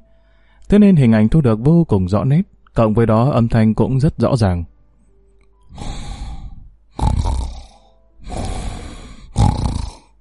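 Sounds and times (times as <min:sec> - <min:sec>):
speech: 0:00.7 - 0:04.7, 0:05.7 - 0:06.0
heavyset man fake snoring like a cow lowing: 0:05.8 - 0:10.1.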